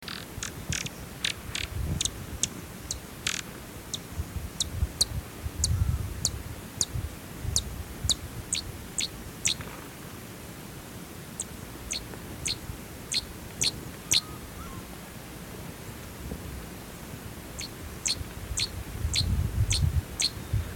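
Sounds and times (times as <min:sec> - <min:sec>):
sparkling violetear: 0:00.1 - 0:09.6, 0:11.4 - 0:14.9, 0:17.5 - 0:20.6.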